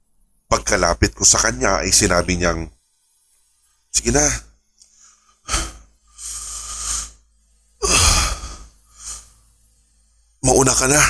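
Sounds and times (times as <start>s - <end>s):
speech: 0.6s - 2.8s, 3.9s - 4.5s, 10.8s - 11.0s
deep heavy breathing of an exhausted hiker panting from fatigue: 4.9s - 9.6s.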